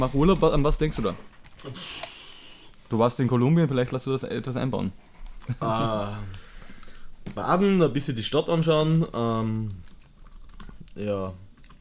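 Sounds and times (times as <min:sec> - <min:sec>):
speech: 0:00.0 - 0:02.1, 0:02.9 - 0:06.4, 0:07.3 - 0:09.9, 0:11.0 - 0:11.4
quick light computer keyboard typing: 0:08.6 - 0:11.8.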